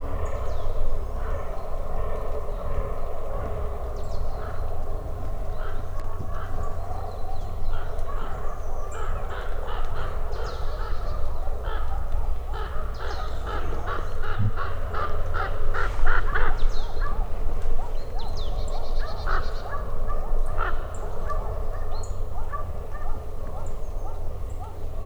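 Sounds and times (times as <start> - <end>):
crow in nature: 0.1 - 25.0
fallow deer in nature: 3.2 - 17.7.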